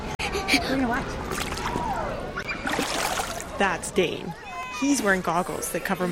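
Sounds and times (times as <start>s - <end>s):
children calling and chattering: 0.0s - 6.0s
speech: 0.5s - 1.5s, 3.6s - 6.0s
children splashing in a swimming pool: 1.3s - 3.7s.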